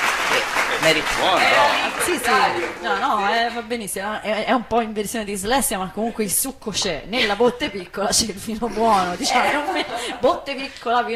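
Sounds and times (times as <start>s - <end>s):
crowd applauding: 0.0s - 3.6s
speech: 0.8s - 11.1s
laughter: 8.7s - 10.8s.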